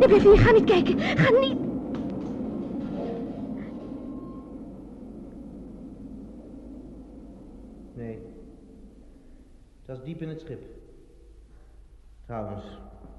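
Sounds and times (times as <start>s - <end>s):
speech: 0.0s - 1.7s, 9.9s - 10.8s, 12.3s - 13.0s
low continuous rumble: 0.0s - 13.1s
brief higher whine: 1.9s - 6.0s.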